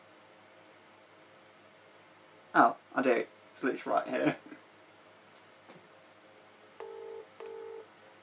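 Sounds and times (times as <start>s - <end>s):
speech: 2.6s - 4.6s
telephone keypad touch-tone beeps as a number is dialed: 6.8s - 7.8s.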